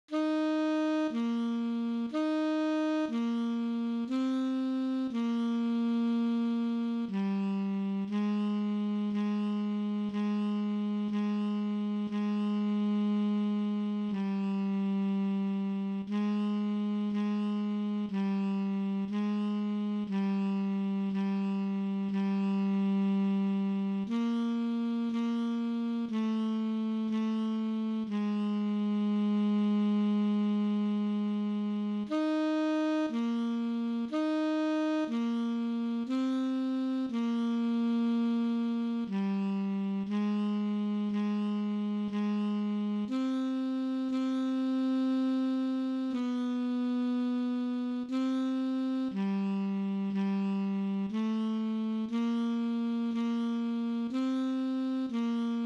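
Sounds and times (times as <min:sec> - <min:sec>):
alto saxophone chorale and recessional: 0:00.1 - 0:55.6.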